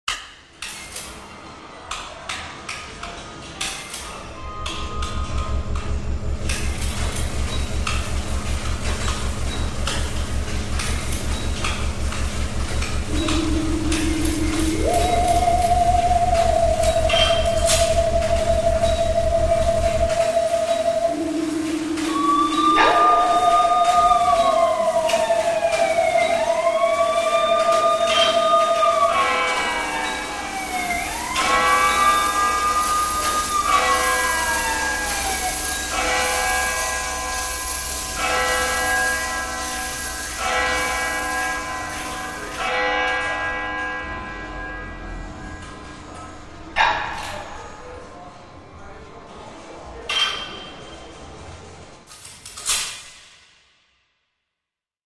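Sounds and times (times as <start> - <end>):
theremin: 4.3 - 47.4.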